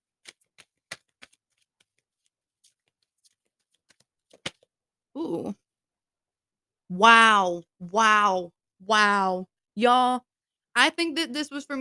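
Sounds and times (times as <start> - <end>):
deck of reading cards shuffling: 0.0 - 4.7
speech: 5.2 - 5.6, 6.9 - 11.7.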